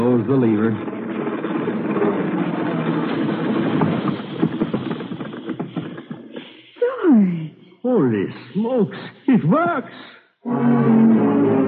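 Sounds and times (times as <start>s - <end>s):
rhythmic clickety-clack of train wheels: 0.0s - 6.5s
train engine rumbling along the rails: 0.0s - 11.6s
speech: 8.1s - 10.7s.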